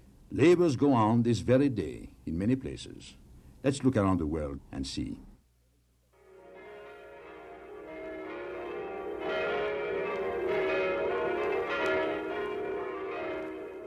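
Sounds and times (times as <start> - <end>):
speech: 0.3 - 5.3
church bells pealing: 6.2 - 13.8.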